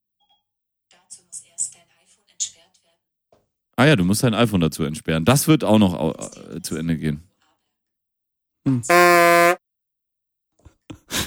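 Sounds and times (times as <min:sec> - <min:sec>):
speech: 0:03.8 - 0:07.3, 0:08.6 - 0:09.4
censor bleep tone: 0:08.9 - 0:09.6.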